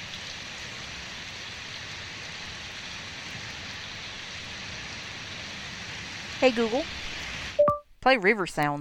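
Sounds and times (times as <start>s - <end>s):
steady rain falling: 0.0s - 7.6s
speech: 6.4s - 7.0s, 8.0s - 8.7s.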